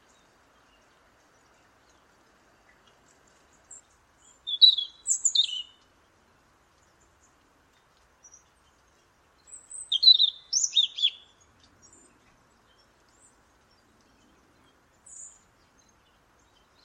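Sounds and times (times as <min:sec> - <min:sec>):
European robin song of thin high warbled phrases: 0:04.2 - 0:05.8, 0:09.5 - 0:12.0.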